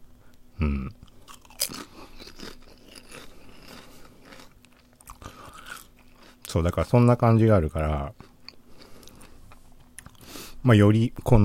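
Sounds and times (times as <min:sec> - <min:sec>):
crunchy chewing: 0:01.0 - 0:06.6, 0:08.1 - 0:10.3
speech: 0:06.6 - 0:08.3, 0:10.6 - 0:11.4.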